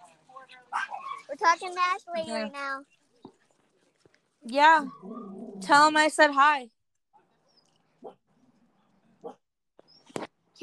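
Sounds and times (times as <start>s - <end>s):
dog yipping: 0.5s - 1.3s, 8.0s - 8.2s
dog barking: 0.7s - 1.3s, 8.0s - 8.3s, 9.2s - 9.4s
speech: 1.4s - 3.0s, 4.4s - 6.8s.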